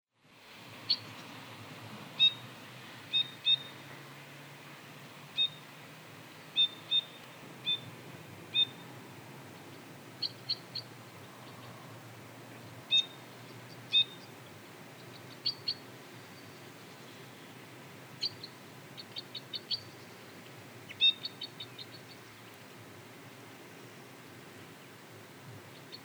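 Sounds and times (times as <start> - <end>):
white-winged crossbill Loxia leucoptera calling: 2.2 - 2.4, 3.1 - 3.9, 5.4 - 5.7, 6.5 - 7.9, 8.5 - 8.9, 9.6 - 11.8, 12.5 - 17.5, 18.2 - 20.2, 20.8 - 22.5, 25.7 - 26.0.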